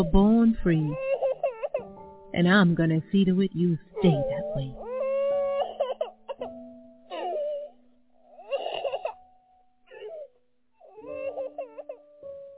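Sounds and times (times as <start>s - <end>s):
speech: 0.0s - 1.1s, 2.3s - 4.8s
baby fussing and crying in wavering wails: 0.0s - 1.9s, 3.9s - 9.2s, 9.9s - 12.4s.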